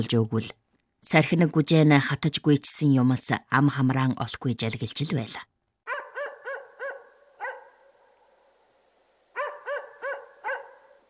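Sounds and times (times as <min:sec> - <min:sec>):
speech: 0:00.0 - 0:05.5
distant dog barking: 0:05.9 - 0:08.6, 0:09.3 - 0:11.0.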